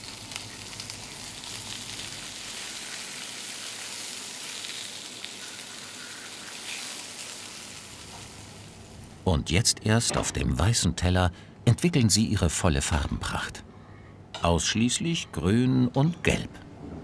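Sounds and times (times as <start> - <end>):
zucchini slices marinated with herbs, oil and pepper sizzling in a frying pan: 0.0 - 9.2
speech: 9.3 - 13.7, 14.4 - 16.7.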